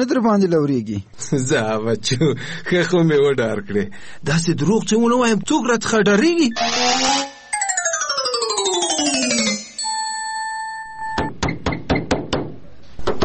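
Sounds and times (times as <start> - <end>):
speech: 0.0 - 7.2
held bell-like tones: 6.5 - 11.3
knocking on a door: 11.4 - 13.2.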